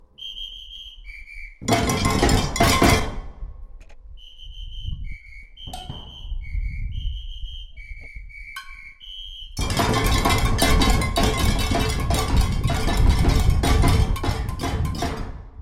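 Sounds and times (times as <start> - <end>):
percussion break: 1.6 - 3.5, 5.7 - 6.5, 9.6 - 15.6.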